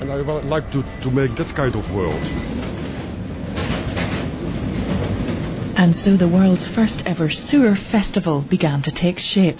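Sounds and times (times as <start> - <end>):
metro train rumbling past underground: 0.0 - 9.5
speech: 0.1 - 2.7, 5.8 - 9.5
metro train wheels clattering: 1.3 - 7.0.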